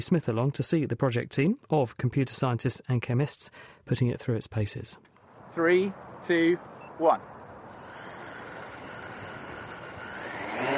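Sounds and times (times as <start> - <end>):
speech: 0.0 - 7.3
six-rotor hexacopter drone taking off: 7.6 - 10.7.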